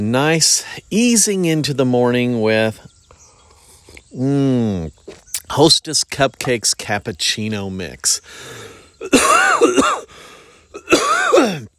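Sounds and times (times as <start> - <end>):
speech: 0.0 - 2.9, 4.1 - 11.7
harsh throat clearing from something stuck in the throat: 9.0 - 10.1, 10.8 - 11.7
person coughing with something stuck in the throat: 9.0 - 10.1, 10.8 - 11.7.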